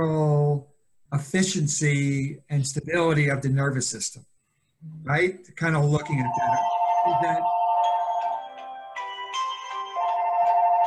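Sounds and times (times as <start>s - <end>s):
speech: 0.0s - 0.3s, 1.1s - 4.4s, 5.1s - 7.5s
mobile phone ringing with an electronic ringtone: 6.2s - 10.8s.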